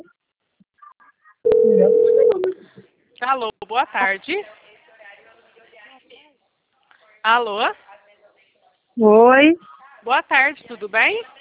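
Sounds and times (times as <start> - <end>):
telephone tones as a call is placed: 1.5 - 2.6
speech: 3.3 - 4.6, 7.2 - 7.8, 9.0 - 11.3.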